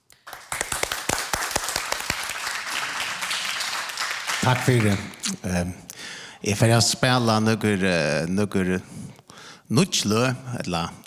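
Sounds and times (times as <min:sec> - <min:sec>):
crowd applauding a musician: 0:00.2 - 0:05.2
speech: 0:04.4 - 0:11.0.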